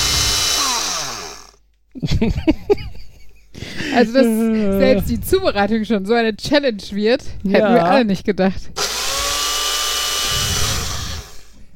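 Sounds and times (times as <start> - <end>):
smoothie blender motor whirring with a grinding whine: 0.0 - 1.6, 8.8 - 11.7
speech: 2.0 - 2.8, 4.0 - 8.9
laughter: 2.0 - 4.8.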